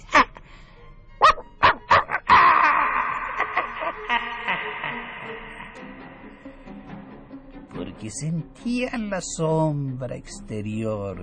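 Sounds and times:
dog barking sharply: 1.2s - 2.2s
laughter: 2.2s - 6.3s
speech: 8.1s - 11.2s.

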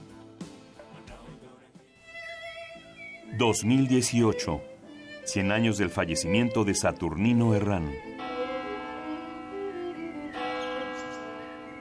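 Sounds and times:
speech: 3.4s - 4.7s, 5.3s - 8.1s
cathedral church bells ringing: 7.2s - 11.7s.

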